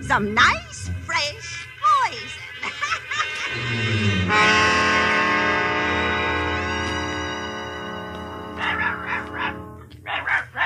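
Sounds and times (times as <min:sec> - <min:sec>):
sustained musical tone: 0:00.0 - 0:10.0
speech: 0:00.1 - 0:00.8
laughter: 0:02.4 - 0:04.4
dog barking: 0:08.6 - 0:10.6.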